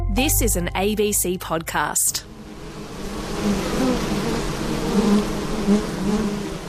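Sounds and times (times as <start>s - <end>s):
speech: 0.1s - 2.4s, 5.0s - 6.4s
honeybees buzzing around beehives on a farm: 1.4s - 6.6s.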